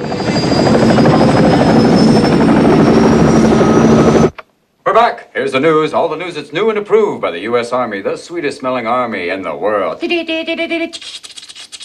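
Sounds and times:
helicopter landing near an army base, rotor and engine droning: 0:00.0 - 0:04.4
speech: 0:05.0 - 0:11.4.

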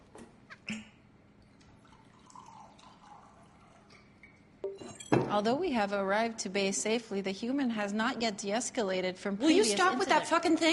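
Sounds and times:
tequila and vodka pouring into a glass: 0:01.4 - 0:05.2
sharp glassy clinks: 0:04.2 - 0:05.3
speech: 0:05.3 - 0:10.7.

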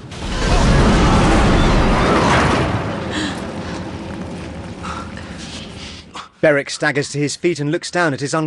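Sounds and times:
fiery explosion ripping through a corridor: 0:00.0 - 0:06.1
crackling debris: 0:00.0 - 0:06.2
speech: 0:06.4 - 0:08.4.

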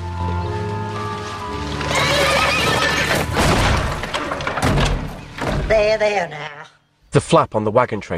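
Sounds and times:
horse hooves stamping in a barn: 0:00.0 - 0:06.0
startled horse whinnying in a barn: 0:01.8 - 0:03.4
clattering commotion of a restless horse shifting about: 0:01.8 - 0:06.1
speech: 0:05.7 - 0:08.1.

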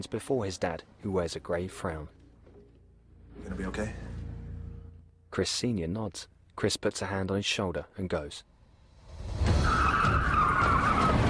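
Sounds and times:
speech: 0:00.0 - 0:02.2, 0:03.4 - 0:04.1, 0:05.4 - 0:08.5
police car tires squealing and skidding around a corner: 0:09.4 - 0:11.2.

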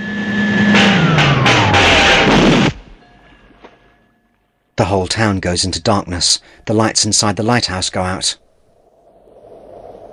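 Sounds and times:
huge generator whining in fog: 0:00.0 - 0:03.6
speech: 0:04.8 - 0:08.4.

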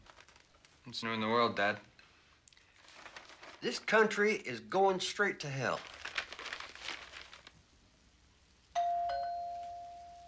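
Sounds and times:
soft crinkling and rustling: 0:00.0 - 0:04.2, 0:05.4 - 0:07.8
speech: 0:00.9 - 0:01.9, 0:03.6 - 0:05.9
doorbell chiming with two ringing tones: 0:08.8 - 0:10.2.

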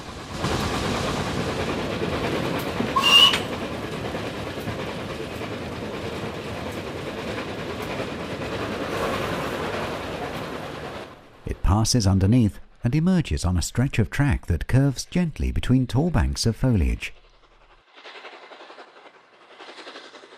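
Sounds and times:
steam locomotive rumbling along the rails: 0:00.0 - 0:20.3
steam locomotive whistle blast: 0:03.0 - 0:03.5
speech: 0:11.8 - 0:17.2.

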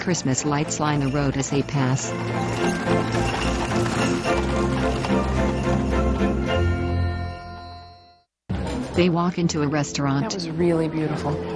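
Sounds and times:
speech: 0:00.0 - 0:05.4, 0:09.0 - 0:11.5
full sustained music: 0:00.0 - 0:11.5
faint tinkling jingle: 0:00.2 - 0:08.2
hooves of two horses clip-clopping pulling a carriage along a road: 0:00.7 - 0:06.8.

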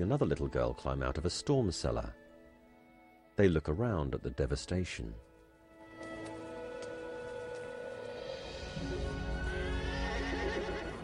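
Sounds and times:
speech: 0:00.0 - 0:02.2, 0:03.4 - 0:05.3, 0:08.8 - 0:09.2
horses whinnying: 0:09.2 - 0:11.0.

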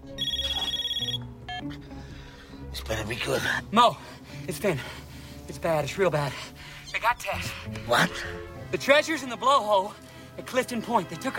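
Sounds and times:
phone ringtone beside a bed on a boat: 0:00.1 - 0:01.7
speech: 0:02.8 - 0:11.3.

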